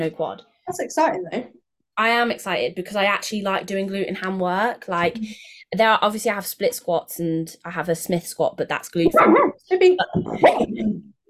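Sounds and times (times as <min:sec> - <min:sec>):
speech: 0:00.0 - 0:11.2
dog yelping bark: 0:09.1 - 0:09.6.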